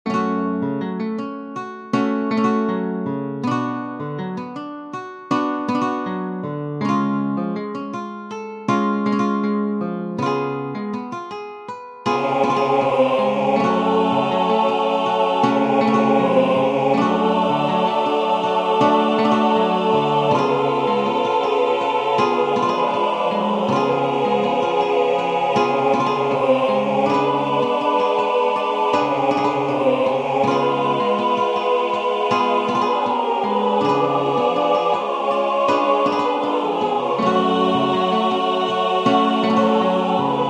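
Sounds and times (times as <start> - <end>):
guitar accompanying a Hebrew song: 0.0 - 40.4
choir singing a Hebrew song: 12.1 - 40.4.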